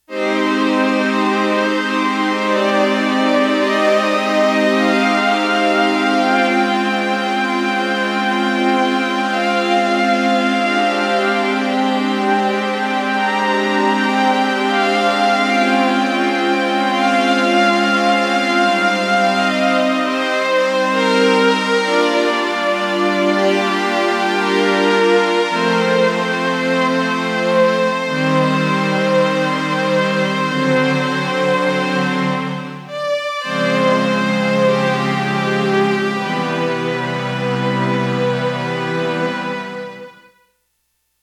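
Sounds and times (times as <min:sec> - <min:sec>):
synth strings from a Roland JX-1 factory preset: 0:00.1 - 0:40.3.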